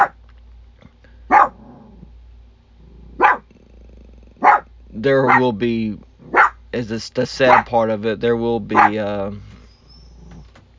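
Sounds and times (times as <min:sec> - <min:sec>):
low steady hum: 0:00.0 - 0:10.7
dog barking: 0:01.3 - 0:01.7, 0:03.2 - 0:03.5, 0:04.4 - 0:05.5, 0:06.2 - 0:06.6, 0:07.4 - 0:07.8, 0:08.7 - 0:09.0
speech: 0:05.0 - 0:06.1, 0:06.7 - 0:09.5.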